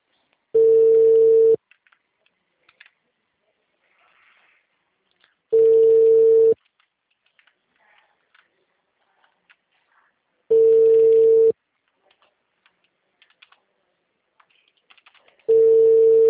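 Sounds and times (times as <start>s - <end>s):
phone call ringback tone with steady low hum: 0.6s - 1.6s, 5.5s - 6.6s, 10.5s - 11.6s, 15.5s - 16.2s
faint keyboard-like clicks of someone typing a WhatsApp message: 1.6s - 3.0s, 5.0s - 5.4s, 6.6s - 8.6s, 9.2s - 9.8s, 11.8s - 13.7s, 14.4s - 15.6s.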